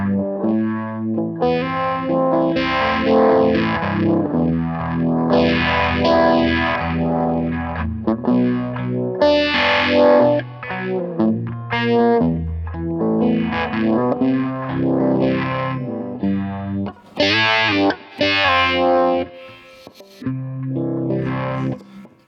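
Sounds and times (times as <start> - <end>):
electric guitar through modulation pedal with phaser, chorus and distortion: 0.0 - 22.2.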